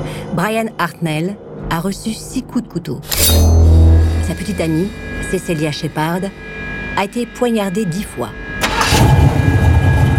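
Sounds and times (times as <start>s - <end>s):
speech: 0.4s - 3.7s, 4.3s - 8.4s
faint high whine running through a car engine rumble: 3.1s - 10.1s
parked car engine cranking and catching, settling into a rumble: 8.6s - 10.1s.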